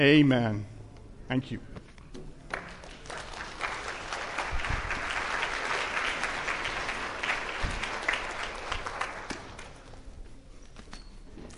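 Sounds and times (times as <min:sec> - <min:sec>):
speech: 0:00.0 - 0:00.7, 0:01.3 - 0:01.8
audience applause of many hands clapping: 0:02.5 - 0:10.0.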